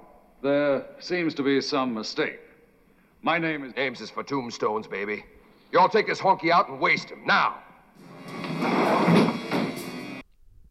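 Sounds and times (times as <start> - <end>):
speech: 0.4 - 2.5, 3.2 - 9.2
heavy sliding door rumbling along its track: 8.0 - 10.2.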